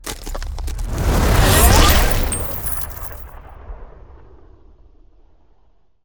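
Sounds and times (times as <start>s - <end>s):
ice spell mobility teleportation effect: 0.0s - 3.3s.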